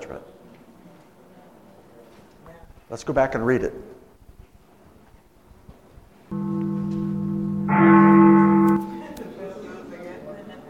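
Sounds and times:
speech: 2.9s - 3.9s
church bells ringing in sustained humming tones: 6.3s - 9.1s.

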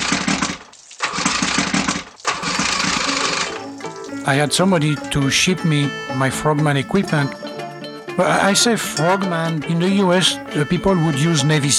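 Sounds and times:
boat motor engine cranking and starting: 0.0s - 7.3s
speech: 4.3s - 7.4s, 8.2s - 11.7s.

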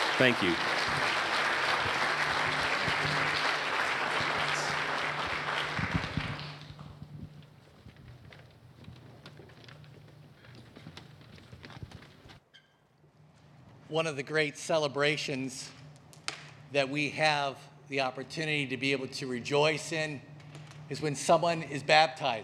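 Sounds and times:
large indoor crowd applauding: 0.0s - 7.0s
low murmur of room noise: 0.0s - 8.0s
speech: 0.2s - 0.8s, 14.0s - 15.8s, 16.7s - 20.3s, 20.9s - 22.4s.

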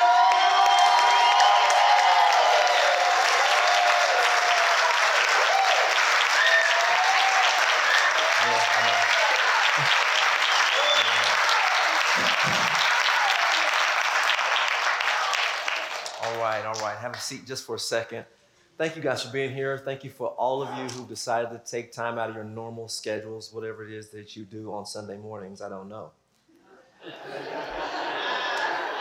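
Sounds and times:
crowd cheering and whooping: 0.0s - 16.1s
large audience clapping: 0.0s - 17.4s, 28.2s - 28.9s
speech: 17.0s - 26.2s
laughter: 27.0s - 28.9s.

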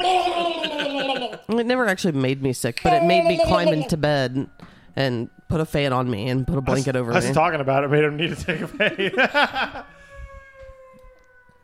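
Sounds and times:
laughter: 0.0s - 1.5s, 8.0s - 10.0s
speech: 1.4s - 9.9s
siren wailing outside: 8.3s - 11.6s.

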